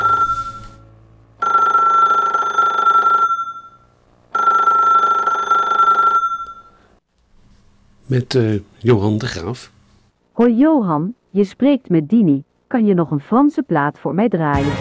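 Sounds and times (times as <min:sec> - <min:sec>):
telephone ringing: 0:00.0 - 0:00.8, 0:01.4 - 0:06.9
speech: 0:08.1 - 0:09.8, 0:10.4 - 0:14.8.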